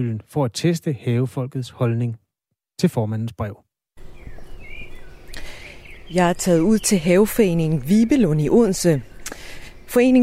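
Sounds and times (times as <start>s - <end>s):
speech: 0.0s - 2.2s, 2.8s - 3.6s, 6.1s - 9.1s, 9.9s - 10.2s
birds chirping in an allotment garden: 4.0s - 10.2s.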